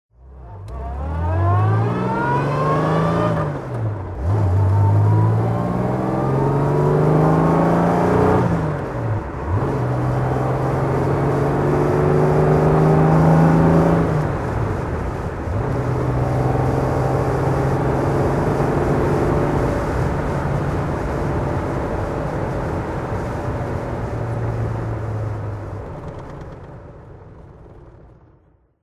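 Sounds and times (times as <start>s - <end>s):
Jaguar E-Type car engine while driving: 0.1s - 28.8s.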